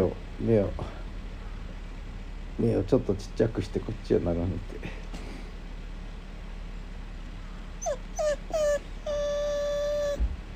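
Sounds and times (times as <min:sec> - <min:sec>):
speech: 0:00.0 - 0:01.0, 0:02.6 - 0:05.1
dog whimpering for food: 0:07.8 - 0:10.3.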